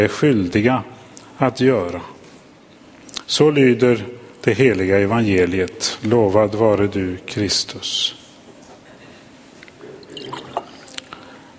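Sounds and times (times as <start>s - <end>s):
speech: 0.0s - 2.1s, 3.3s - 8.2s
sharper drips and clinks of water in a glass: 10.0s - 11.0s
water pouring into a glass: 10.0s - 11.0s.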